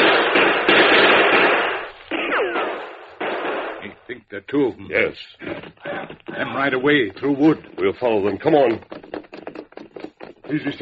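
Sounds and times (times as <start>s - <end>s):
gunshots returned in a radio drama shootout: 0.0s - 4.1s
speech: 4.3s - 9.0s, 10.5s - 10.7s.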